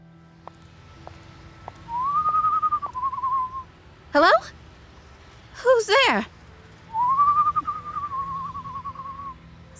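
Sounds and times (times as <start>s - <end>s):
faint low hum: 0.0s - 9.7s
person whistling a long note in a dark alley: 1.9s - 3.6s, 6.9s - 9.4s
speech: 4.2s - 4.6s, 5.6s - 6.3s.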